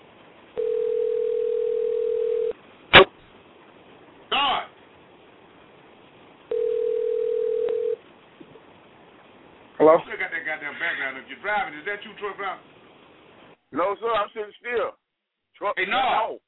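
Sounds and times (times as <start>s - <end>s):
ringback tone of an unanswered telephone call: 0.6s - 2.5s, 6.5s - 8.0s
speech: 9.8s - 12.7s, 13.7s - 15.0s, 15.6s - 16.4s.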